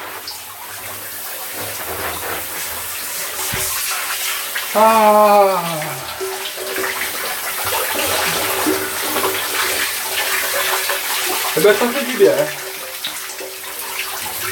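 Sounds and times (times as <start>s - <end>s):
hot shower water spraying under pressure: 0.0s - 14.5s
speech: 4.7s - 6.0s, 11.6s - 12.6s
man's brief drawn-out vocal exclamation: 4.7s - 6.3s.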